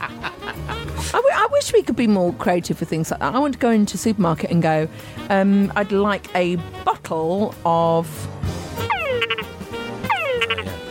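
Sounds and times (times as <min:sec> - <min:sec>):
laughter: 0:00.0 - 0:01.0
speech: 0:01.1 - 0:08.4
frog calling: 0:08.9 - 0:10.8.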